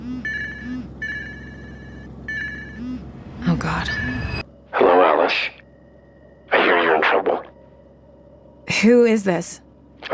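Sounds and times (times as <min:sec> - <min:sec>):
faint low hum: 0:00.0 - 0:10.1
messaging app electronic phone ringtone for an incoming call: 0:00.2 - 0:03.1
speech: 0:03.6 - 0:04.4, 0:08.8 - 0:09.7.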